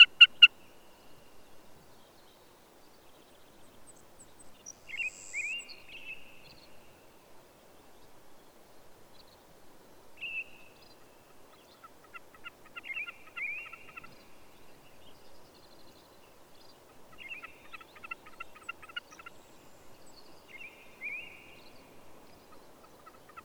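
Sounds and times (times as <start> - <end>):
low background hiss: 0.0 - 23.4
bird song of trilled phrases and rising slurred whistles: 1.9 - 7.1, 10.2 - 23.4.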